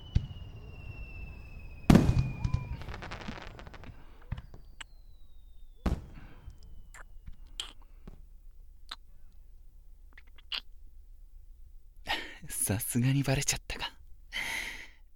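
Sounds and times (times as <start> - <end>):
fireworks crackling sparkles: 0.0 - 8.1
fireworks going up with faint whistles: 0.0 - 8.3
speech: 12.7 - 14.0.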